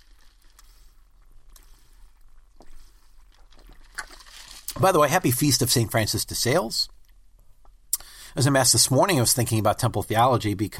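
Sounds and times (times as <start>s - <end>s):
person sipping water: 0.0s - 4.8s
swallowing water: 0.5s - 4.2s
speech: 4.8s - 7.0s, 8.4s - 10.7s.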